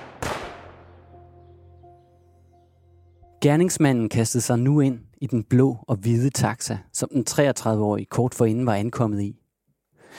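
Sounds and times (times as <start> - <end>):
handgun gunshot with lingering tail: 0.0 - 0.9
speech: 3.4 - 9.4.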